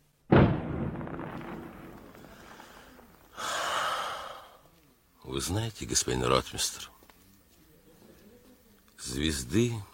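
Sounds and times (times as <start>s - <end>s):
cannon shot fired from bastions: 0.3s - 3.3s
speech: 5.4s - 7.0s, 9.0s - 9.9s.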